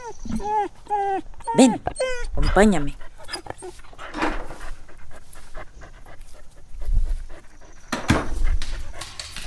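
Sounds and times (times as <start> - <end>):
dog whimpering softly: 0.0 - 4.2
dog panting: 0.0 - 9.4
speech: 0.1 - 3.0.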